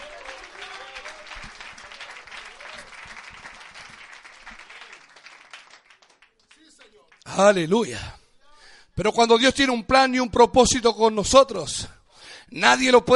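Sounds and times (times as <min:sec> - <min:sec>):
voices and shouts: 0:00.0 - 0:03.1
congregation applause: 0:00.0 - 0:07.3
speech: 0:07.4 - 0:08.2, 0:09.0 - 0:11.9, 0:12.5 - 0:13.1.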